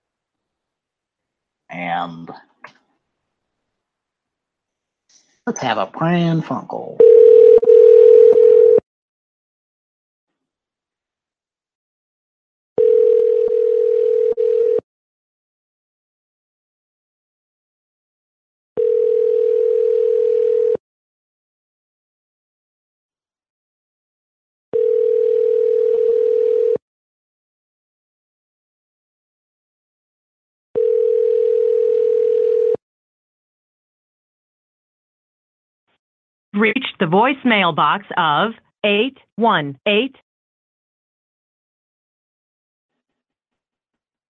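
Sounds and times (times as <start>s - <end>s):
speech: 1.7s - 2.8s, 5.5s - 7.3s, 36.6s - 40.2s
telephone ringing tone while placing a call: 7.0s - 8.8s, 12.8s - 14.8s, 18.8s - 20.8s, 24.8s - 26.8s, 30.8s - 32.8s.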